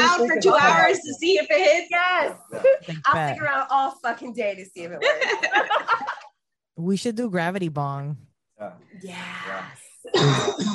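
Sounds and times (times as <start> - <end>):
speech: 0.2 - 10.7
harsh cough-like burst: 10.1 - 10.7
person clearing throat: 10.1 - 10.7.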